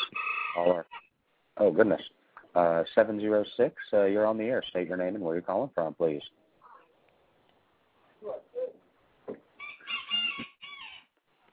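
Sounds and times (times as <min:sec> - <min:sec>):
speech: 0:00.6 - 0:01.0, 0:01.6 - 0:06.4, 0:08.2 - 0:08.5
rooster crowing faintly on a phone line: 0:09.6 - 0:11.2.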